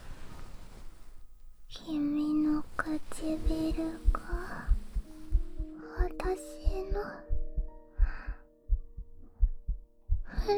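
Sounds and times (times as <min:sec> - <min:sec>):
faint constant hum: 0:00.0 - 0:07.8
heartbeat: 0:02.6 - 0:10.5
speech: 0:02.8 - 0:04.7, 0:06.3 - 0:07.3.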